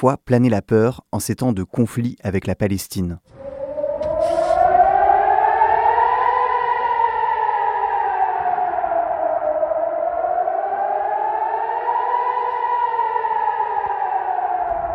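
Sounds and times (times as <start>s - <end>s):
speech: 0.0s - 3.5s
air raid warning sirens wailing: 3.3s - 14.9s.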